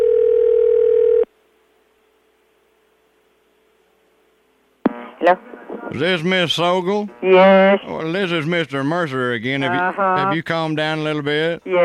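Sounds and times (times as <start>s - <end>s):
telephone dial tone: 0.0s - 1.3s
faint residual whine: 1.4s - 11.8s
speech: 5.3s - 11.8s.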